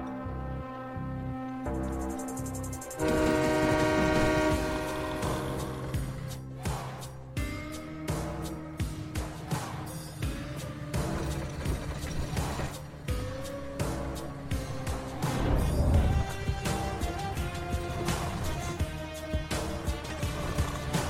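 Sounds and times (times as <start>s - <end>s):
approaching train horn blasts: 0.1s - 6.3s
approaching train rumbling roar: 0.3s - 6.5s, 8.2s - 21.0s.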